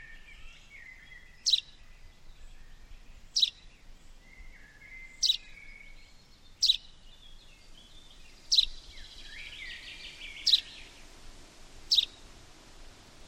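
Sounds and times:
steady background hiss: 0.0 - 13.2
soft lower bird warbling notes: 10.3 - 10.8, 11.9 - 12.2.

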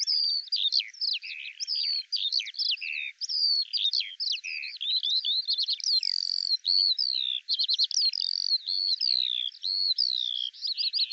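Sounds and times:
Eurasian skylark singing a continuous warble: 0.0 - 11.1.

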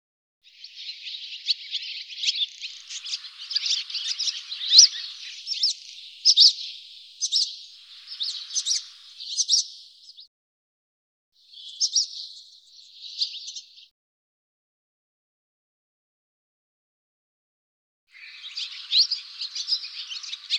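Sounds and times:
bird calls high chirps: 0.5 - 10.2, 11.5 - 13.9, 18.1 - 20.5.

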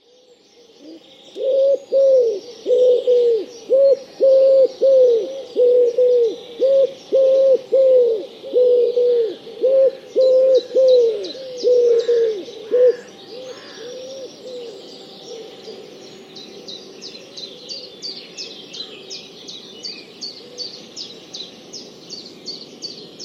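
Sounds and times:
bird cooing: 0.8 - 16.8.

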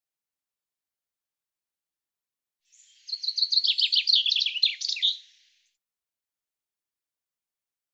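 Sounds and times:
common chaffinch song: 2.7 - 5.7.

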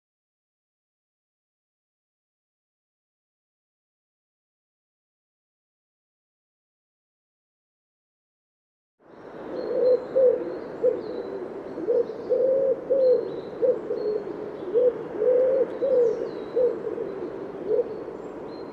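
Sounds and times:
bird cooing in low soft hooting notes: 9.4 - 18.7.

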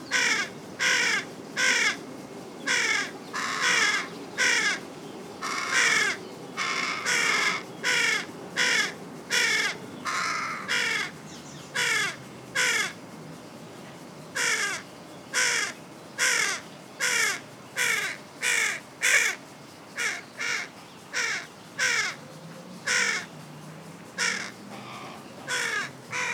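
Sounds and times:
Carrion crow Corvus corone giving harsh grating caws: 0.1 - 2.0, 2.7 - 4.8, 5.4 - 11.2, 11.8 - 13.0, 14.4 - 14.8, 15.4 - 19.4, 20.0 - 22.2, 22.9 - 23.3, 24.2 - 26.3.

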